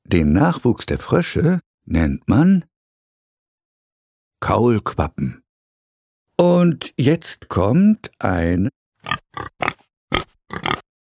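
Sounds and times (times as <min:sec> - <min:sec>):
speech: 0:00.1 - 0:02.7, 0:04.4 - 0:05.4, 0:06.4 - 0:10.8
pig grunting: 0:09.0 - 0:11.0.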